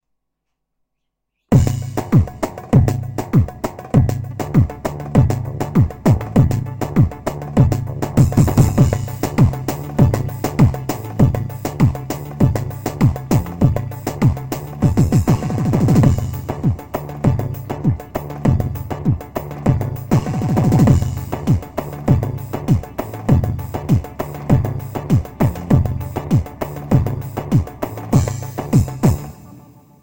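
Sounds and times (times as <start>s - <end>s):
Turkish pop halay music on a Korg Pa500 keyboard: 1.5s - 29.5s.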